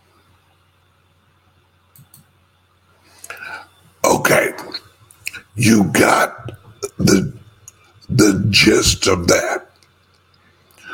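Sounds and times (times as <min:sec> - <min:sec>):
soft clicks: 0:01.9 - 0:02.3
speech: 0:05.6 - 0:07.4, 0:08.2 - 0:09.6.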